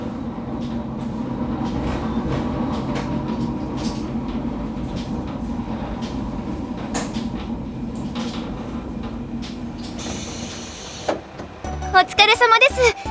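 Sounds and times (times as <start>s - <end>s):
train rattling and rumbling as it pulls into a station: 0.0s - 13.1s
hissing burst: 10.0s - 11.3s
speech: 12.1s - 13.0s.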